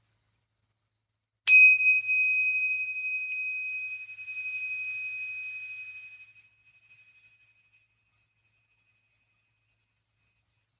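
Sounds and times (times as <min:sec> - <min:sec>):
tingsha bell ringing: 0:01.5 - 0:06.0.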